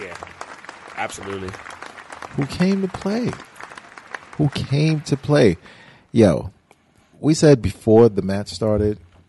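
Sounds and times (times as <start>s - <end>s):
audience clapping: 0.0s - 6.0s
speech: 1.0s - 1.7s, 2.4s - 3.5s, 4.4s - 6.6s, 7.2s - 9.0s.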